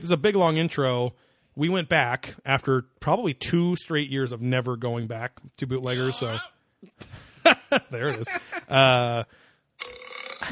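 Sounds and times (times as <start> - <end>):
speech: 0.0 - 10.5
rough raspy vocal sound: 5.9 - 6.6
loud drawn-out belch: 9.8 - 10.5.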